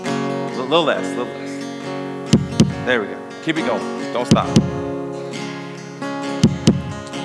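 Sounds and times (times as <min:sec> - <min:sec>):
speech: 0:00.7 - 0:01.5, 0:02.8 - 0:04.8
deep bass thumps in a heartbeat pattern: 0:02.3 - 0:02.9, 0:04.3 - 0:04.9, 0:06.4 - 0:07.0.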